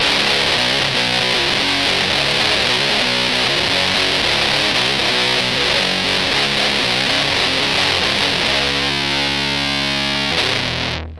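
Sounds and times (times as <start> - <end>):
distorted guitar through a fuzz pedal tone stack: 0.0 - 11.1.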